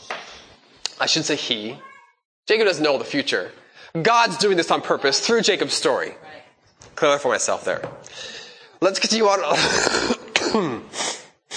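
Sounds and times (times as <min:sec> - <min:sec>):
speech: 0:01.0 - 0:01.9, 0:02.5 - 0:11.0
person coughing: 0:09.6 - 0:11.0
throaty wheezy exhale: 0:10.9 - 0:11.5.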